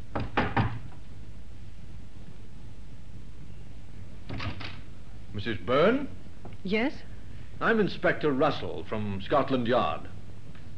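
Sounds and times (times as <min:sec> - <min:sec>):
faint hiss: 0:00.0 - 0:10.7
knocking on a wooden door: 0:00.1 - 0:00.9
speech: 0:05.4 - 0:10.2.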